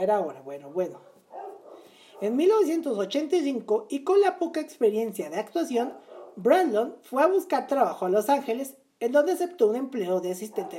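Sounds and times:
speech: 0:00.0 - 0:01.1, 0:02.2 - 0:10.7
dog barking: 0:00.9 - 0:02.4, 0:05.8 - 0:06.5, 0:10.5 - 0:10.7
dog yelping: 0:01.0 - 0:02.4, 0:05.9 - 0:06.4, 0:10.5 - 0:10.7.

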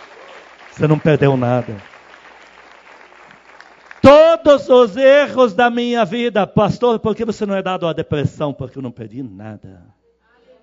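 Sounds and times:
audience applauding loudly: 0:00.0 - 0:04.6
speech: 0:00.8 - 0:01.9, 0:04.5 - 0:10.0.

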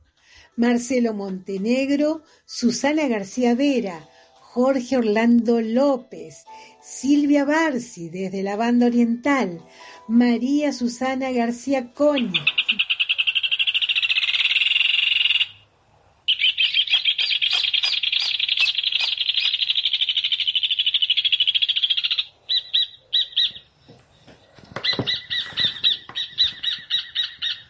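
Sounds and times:
speech: 0:00.6 - 0:12.8
rufous hornero calling: 0:12.2 - 0:15.6, 0:16.3 - 0:23.7, 0:24.8 - 0:27.6.

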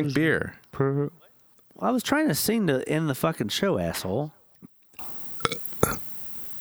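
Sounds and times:
speech: 0:00.0 - 0:04.4
feeble short burp: 0:05.0 - 0:06.2.

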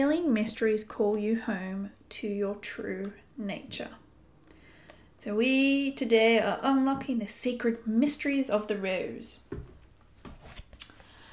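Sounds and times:
speech: 0:00.0 - 0:04.0, 0:05.2 - 0:09.7
deck of oracle cards being shuffled: 0:10.2 - 0:11.0.

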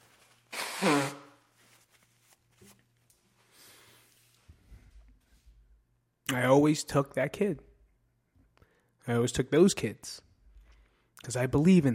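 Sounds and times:
faint rustling and handling: 0:00.0 - 0:00.6, 0:01.3 - 0:05.8
person blowing nose: 0:00.5 - 0:01.5
speech: 0:06.3 - 0:07.7, 0:09.1 - 0:10.3, 0:11.2 - 0:11.9.

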